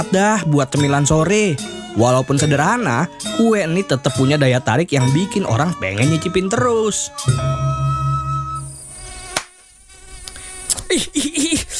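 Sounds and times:
speech: 0.0s - 7.8s
mosquito buzzing: 7.2s - 10.8s
laughter: 10.8s - 11.7s.

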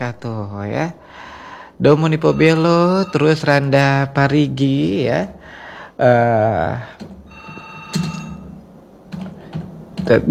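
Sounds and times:
speech: 0.0s - 7.2s, 10.0s - 10.2s
telephone ringing: 2.0s - 3.9s, 7.2s - 8.6s.

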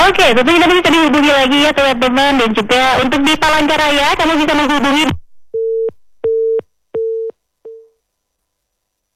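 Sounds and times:
speech: 0.1s - 5.2s
telephone busy tone after call line disconnected: 5.6s - 7.9s.

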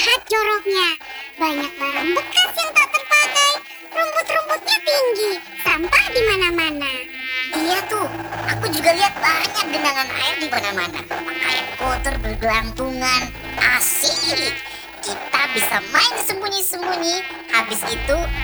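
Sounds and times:
persistent mosquito whine: 0.0s - 18.4s
voices talking: 0.0s - 18.4s
low hum: 5.7s - 16.1s.

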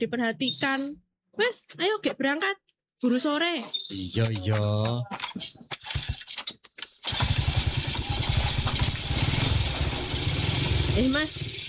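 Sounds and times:
speech: 0.0s - 6.1s, 11.0s - 11.5s
motorcycle engine starting: 5.8s - 6.2s, 7.0s - 11.6s.

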